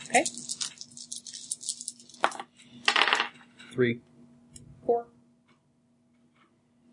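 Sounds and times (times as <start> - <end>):
person speaking: 0.0 - 1.9
dice rolling on a hard table: 0.2 - 3.4.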